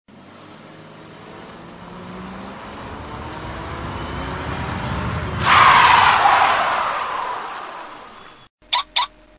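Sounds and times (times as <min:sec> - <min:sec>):
car sound: 0:00.1 - 0:08.5
car alarm click: 0:08.2 - 0:09.1.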